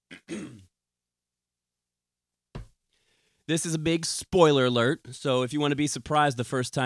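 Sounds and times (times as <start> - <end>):
person clearing throat while sipping water: 0.1 - 0.7
speech: 3.5 - 6.8.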